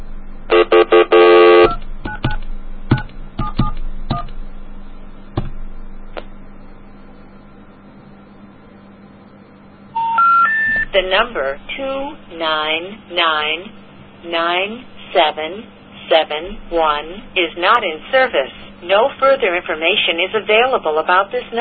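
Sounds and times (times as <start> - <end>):
telephone keypad tones and clicks: 0.5 - 4.4, 10.0 - 11.0
touch-tone telephone dialing beeps: 10.0 - 10.9
speech: 11.0 - 21.5.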